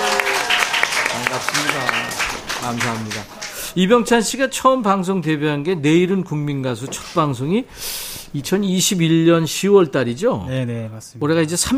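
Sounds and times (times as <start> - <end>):
crowd of fans cheering and shouting outside by the windows: 0.0 - 2.7
fans clapping: 0.0 - 4.0
speech: 2.7 - 11.7.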